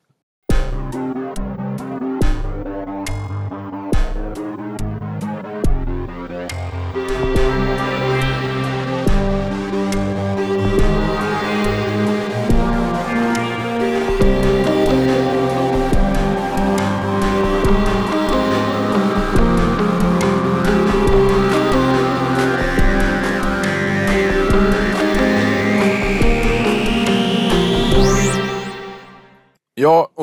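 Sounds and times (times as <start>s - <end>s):
electronic remix of a podcast jingle with punchy beats and layered synths: 0.5s - 29.4s.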